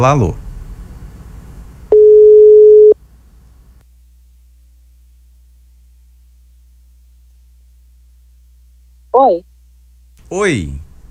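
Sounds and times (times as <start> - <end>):
speech: 0.0 - 0.4, 9.2 - 9.5, 10.3 - 10.8
ringback tone of an outgoing phone call: 1.9 - 3.0.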